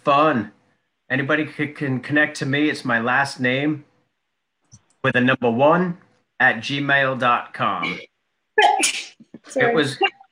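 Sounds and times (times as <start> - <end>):
speech: 0.0 - 3.9, 5.0 - 10.2
loud sneezes: 8.6 - 9.2.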